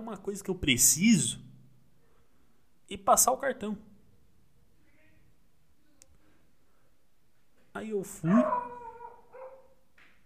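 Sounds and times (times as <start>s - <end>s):
speech: 0.0s - 1.5s, 2.9s - 3.9s, 7.8s - 8.8s
dog howling: 8.2s - 9.7s.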